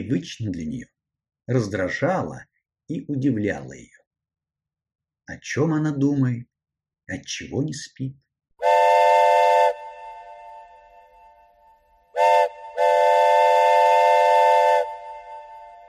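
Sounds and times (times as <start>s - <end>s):
speech: 0.0s - 4.0s, 5.3s - 6.5s, 7.1s - 8.2s
loud train whistle blasting as the train slows for a station: 8.6s - 11.5s, 12.1s - 15.8s.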